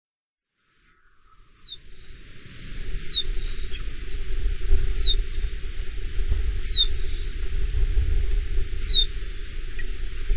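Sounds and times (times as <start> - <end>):
chestnut-flanked white-eye giving thin high downslurred call notes: 0.9 - 5.7, 6.5 - 7.4, 8.8 - 10.3
low rumble: 1.7 - 10.3.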